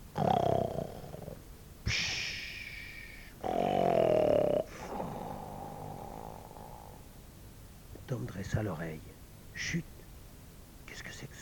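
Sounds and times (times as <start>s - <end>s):
person snoring: 0.1s - 7.1s
speech: 8.5s - 9.9s.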